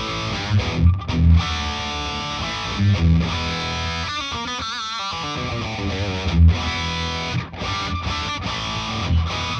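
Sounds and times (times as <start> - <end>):
heavily distorted electric guitar through a distortion pedal: 0.0 - 9.5.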